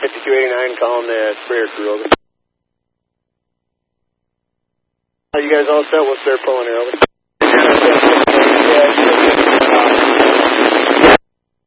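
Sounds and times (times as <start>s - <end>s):
harsh radio static on transmission: 0.0s - 2.2s, 5.4s - 11.2s
speech: 0.3s - 2.2s, 5.3s - 9.0s.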